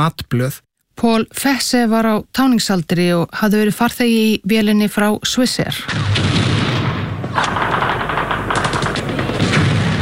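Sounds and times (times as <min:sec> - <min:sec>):
speech: 0:00.0 - 0:06.3
machine-gun fire during fighting near a hotel: 0:05.9 - 0:09.9.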